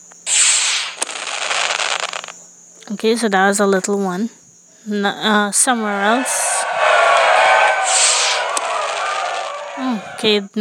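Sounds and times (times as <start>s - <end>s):
small firework sound from a touchscreen app: 0.2s - 2.4s, 5.7s - 10.3s
speech: 2.9s - 6.4s, 9.8s - 10.5s.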